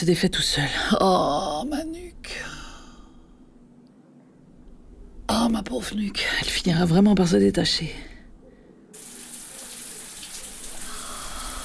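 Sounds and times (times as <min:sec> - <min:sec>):
speech: 0:00.0 - 0:02.5, 0:05.4 - 0:08.1
salty shower water running in a hissing stream: 0:00.0 - 0:03.6, 0:04.6 - 0:11.6
low hum: 0:00.0 - 0:03.7, 0:04.5 - 0:08.6.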